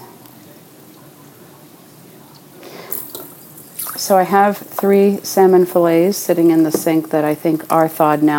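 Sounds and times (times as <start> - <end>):
water pouring into a bowl of rice: 3.0 - 4.2
speech: 4.0 - 8.3.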